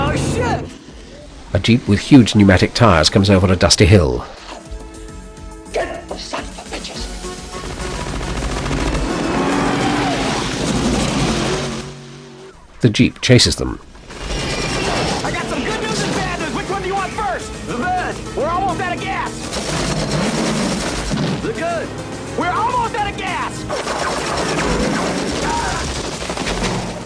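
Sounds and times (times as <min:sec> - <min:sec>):
speech: 0:01.5 - 0:04.4, 0:12.8 - 0:13.9
loud sustained barrage of gunfire: 0:07.3 - 0:11.8, 0:14.1 - 0:17.2, 0:19.3 - 0:21.7, 0:23.7 - 0:27.0
voices shouting: 0:14.6 - 0:19.4, 0:21.4 - 0:23.8, 0:25.3 - 0:26.0.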